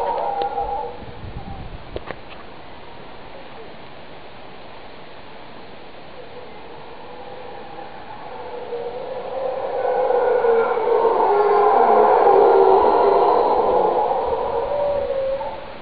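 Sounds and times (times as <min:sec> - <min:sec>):
howler monkey howling in the Americas: 0:00.0 - 0:01.7, 0:06.1 - 0:15.8.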